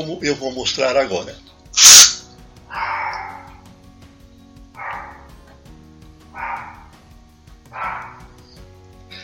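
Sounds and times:
speech: 0.0s - 2.0s
insecticide spray hiss: 1.8s - 2.2s
small dog barking: 2.7s - 3.6s, 4.8s - 5.4s, 6.4s - 7.0s, 7.7s - 8.4s.

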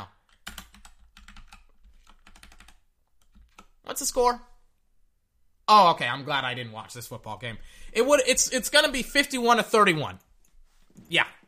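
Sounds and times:
typing on a computer keyboard: 0.2s - 3.8s
speech: 4.0s - 4.5s, 5.7s - 10.3s, 11.0s - 11.4s.

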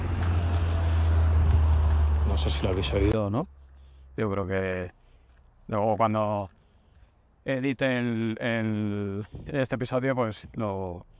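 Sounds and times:
car passing by with deep engine rumble: 0.0s - 3.2s
car road noise: 0.0s - 11.1s
speech: 2.4s - 3.6s, 4.2s - 5.0s, 5.7s - 6.6s, 7.4s - 11.1s.

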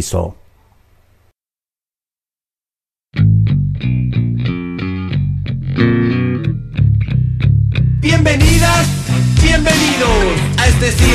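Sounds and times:
speech: 0.0s - 0.4s, 8.0s - 11.1s
loud music track with distorted effects-heavy guitar chords over a full band: 3.2s - 11.1s.

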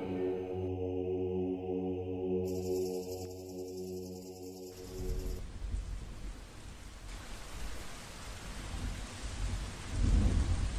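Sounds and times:
sustained tones: 0.0s - 5.4s
heavy rain from a storm in a forest: 5.4s - 10.7s
thunder rumble from a storm in a forest: 8.6s - 10.7s.

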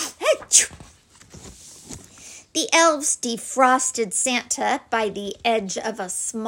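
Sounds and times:
loud sneeze: 0.0s - 0.8s
speech: 0.5s - 0.8s, 2.6s - 6.4s.

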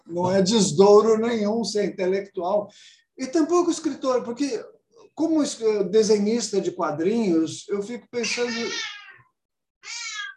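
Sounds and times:
speech: 0.1s - 9.0s
cat meowing: 8.2s - 10.3s.

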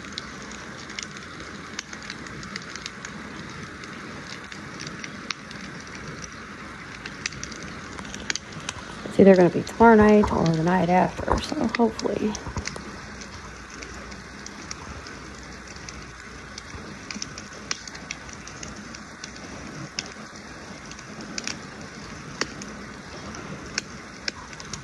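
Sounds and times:
crackling campfire outdoors on a mountainside: 0.0s - 24.8s
speech: 9.2s - 12.6s.

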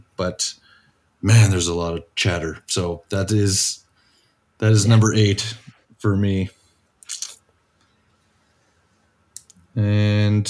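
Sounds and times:
speech: 0.2s - 0.6s, 1.2s - 3.8s, 4.6s - 6.6s, 9.8s - 10.4s
sharp clicks of someone clicking through a PowerPoint slideshow: 9.4s - 9.7s.

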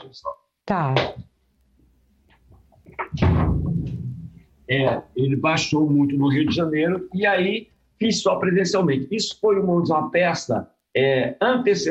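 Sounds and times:
speech: 0.0s - 1.3s, 4.7s - 11.8s
door swinging and shutting with a soft thud: 2.9s - 5.0s.

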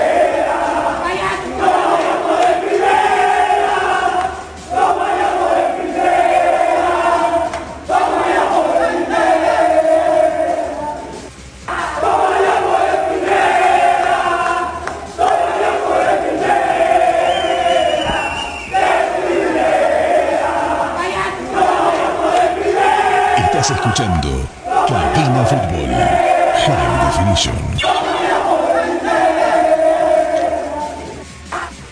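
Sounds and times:
football players chanting and shouting in a locker room: 0.0s - 31.9s.

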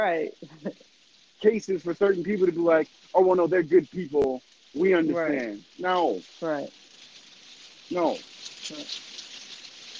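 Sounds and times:
speech: 0.0s - 0.7s, 1.4s - 6.8s, 7.9s - 9.1s
steady rain pattering in a soft continuous hiss: 0.0s - 9.9s.

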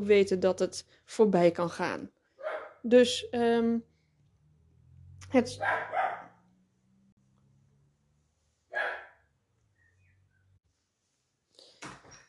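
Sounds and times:
speech: 0.0s - 2.2s, 2.8s - 3.9s, 5.3s - 6.1s
small dog barking: 2.4s - 2.8s, 5.6s - 6.4s, 8.7s - 9.3s.

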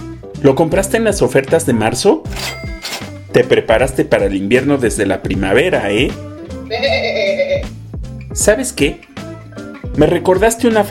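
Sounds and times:
speech: 0.4s - 2.6s, 3.3s - 7.0s, 8.4s - 9.1s, 10.0s - 10.9s
single sheep bleating: 6.7s - 7.6s.

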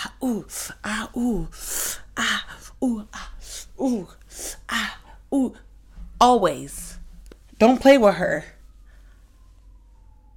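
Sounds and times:
steady low rumble: 0.0s - 10.3s
speech: 0.2s - 5.6s, 6.2s - 6.8s, 7.6s - 8.6s
ambulance siren wailing outside: 7.6s - 10.3s.

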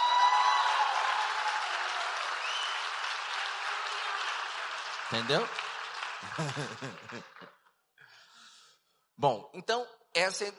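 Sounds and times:
audience applause: 0.0s - 7.6s
speech: 5.1s - 5.6s, 6.2s - 7.5s, 9.2s - 10.5s
laughter: 6.2s - 7.6s.

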